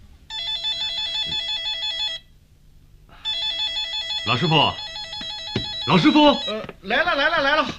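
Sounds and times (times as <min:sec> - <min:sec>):
desk telephone bell ringing in an office: 0:00.3 - 0:02.3, 0:03.2 - 0:06.6
speech: 0:04.3 - 0:04.9, 0:05.9 - 0:07.7.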